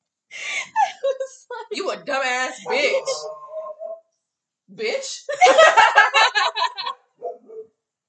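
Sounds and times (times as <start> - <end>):
laughter: 0.4 - 3.4, 5.3 - 6.9
speech: 1.9 - 3.4, 4.8 - 7.0
female dog barking: 2.6 - 4.0, 7.2 - 7.7
female dog yipping or whining: 2.6 - 4.0.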